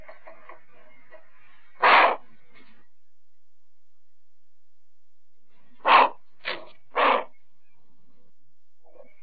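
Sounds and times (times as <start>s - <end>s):
Australian bustard: 1.7s - 2.4s, 5.8s - 7.4s.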